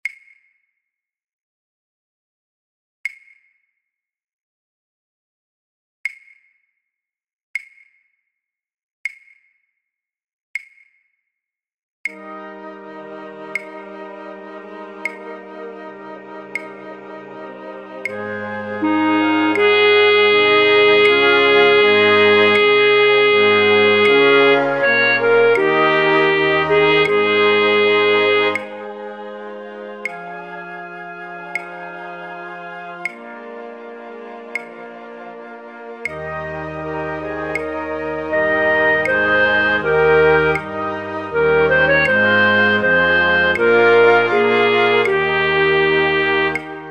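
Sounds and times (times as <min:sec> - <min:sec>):
flute orchestra playing for practice tracks: 0:12.2 - 0:46.9.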